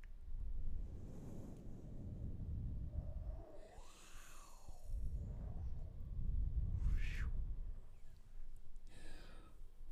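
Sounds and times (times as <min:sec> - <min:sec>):
soft whooshing swells: 0:00.5 - 0:08.2.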